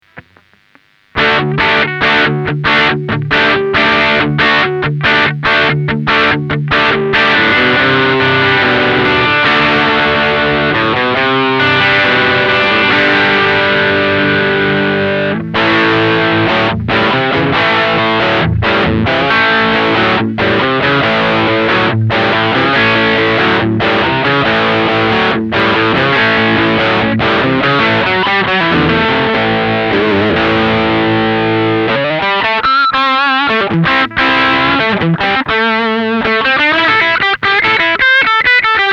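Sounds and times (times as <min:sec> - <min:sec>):
classic rock crunch electric guitar through headphone amp: 0:00.0 - 0:38.9.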